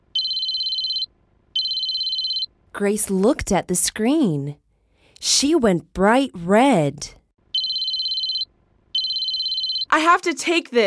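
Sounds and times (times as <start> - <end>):
cell phone ringing during a family dinner: 0.1 - 2.5, 7.5 - 10.0
speech: 2.8 - 4.6, 5.2 - 7.2, 10.0 - 10.8.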